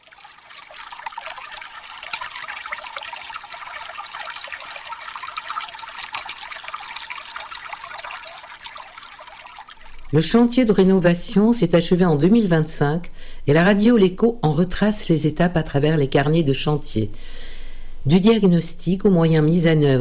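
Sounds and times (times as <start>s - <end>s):
water trickling from a free mineral drinking-water spring: 0.0s - 12.8s
speech: 10.1s - 20.0s.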